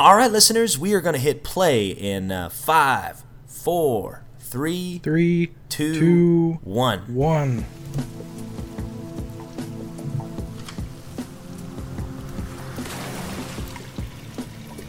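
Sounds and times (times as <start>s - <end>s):
speech: 0.0s - 8.1s
low tonal hum: 7.6s - 14.8s
steady rainfall in a city: 7.7s - 14.8s
irregular drips and splashes spattering over a hard surface: 11.2s - 14.8s.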